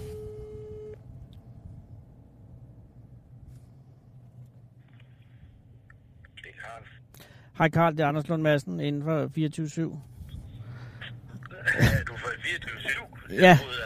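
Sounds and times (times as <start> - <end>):
steady phone tone: 0.0 - 1.0
low engine rumble: 0.0 - 13.8
speech: 6.5 - 10.1, 13.3 - 13.8.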